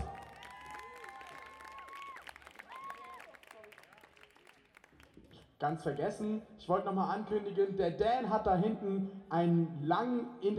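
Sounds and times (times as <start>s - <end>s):
audience shouts and cheers: 0.0s - 3.6s
audience applauding: 0.0s - 5.6s
speech: 5.6s - 10.5s.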